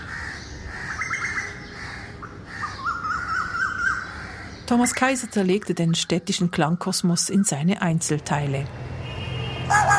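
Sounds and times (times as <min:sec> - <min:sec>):
crows cawing: 0:00.0 - 0:04.7, 0:09.7 - 0:09.9
traffic rumble: 0:00.0 - 0:09.9
speech: 0:04.7 - 0:08.9.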